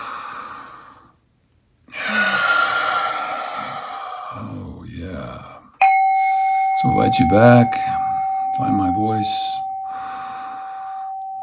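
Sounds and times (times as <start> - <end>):
deep cleansing breaths during a guided breathing exercise: 0.0 - 1.2, 1.9 - 6.8, 9.6 - 11.4
speech: 6.8 - 8.0, 8.6 - 9.6.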